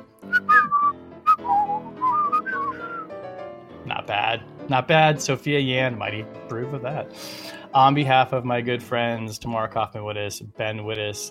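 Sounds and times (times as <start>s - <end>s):
person whistling a short bouncy tune: 0.2s - 3.1s
speech: 4.1s - 11.2s.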